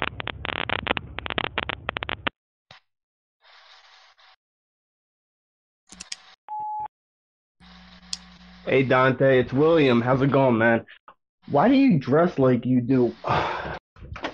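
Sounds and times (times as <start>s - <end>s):
bursts of crackly noise and clicks: 0.0s - 2.8s
voicemail recording beep: 6.5s - 6.9s
speech: 8.7s - 13.8s.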